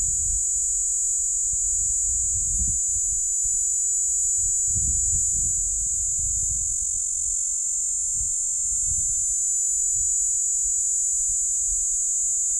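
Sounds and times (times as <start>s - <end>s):
cicada song at Steytlerville: 0.0s - 12.5s.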